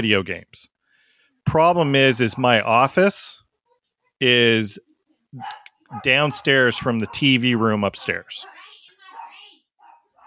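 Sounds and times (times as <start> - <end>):
speech: 0.0 - 0.8, 1.4 - 3.4, 4.2 - 8.5
dog barking and yipping: 2.1 - 2.9, 5.4 - 10.2.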